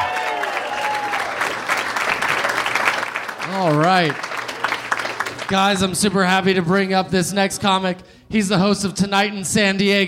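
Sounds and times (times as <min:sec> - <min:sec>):
faint whoops from crowd: 0:00.0 - 0:01.5
crowd applause: 0:00.0 - 0:06.3
speech: 0:03.6 - 0:04.3, 0:05.5 - 0:10.0.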